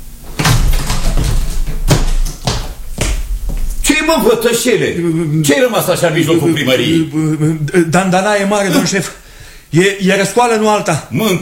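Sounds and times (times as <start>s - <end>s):
door being opened with wooden thuds and rattles: 0.0s - 3.8s
speech: 4.0s - 11.3s.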